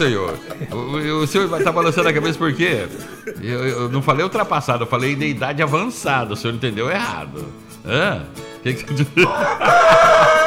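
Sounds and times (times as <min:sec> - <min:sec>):
rooster crowing: 0:00.0 - 0:04.7, 0:09.2 - 0:10.4
speech: 0:00.0 - 0:10.3
laughter: 0:00.0 - 0:10.4.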